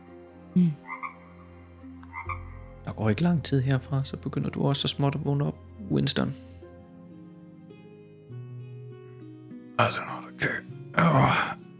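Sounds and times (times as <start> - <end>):
speech: 0.6 - 1.0, 3.0 - 6.6, 9.8 - 10.2
frogs croaking outside: 0.6 - 2.9.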